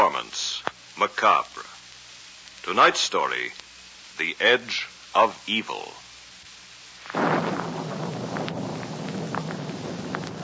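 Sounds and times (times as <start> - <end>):
faint crackles: 0.0 - 10.4
speech: 1.2 - 1.6, 2.6 - 3.6, 4.2 - 6.0
storm noise: 7.0 - 10.4
loud thunder clap: 7.1 - 10.4.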